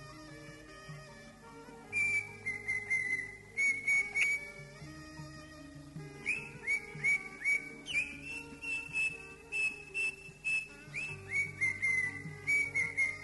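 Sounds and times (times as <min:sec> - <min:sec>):
greater green leafbird song: 0:01.9 - 0:04.8, 0:06.2 - 0:13.2.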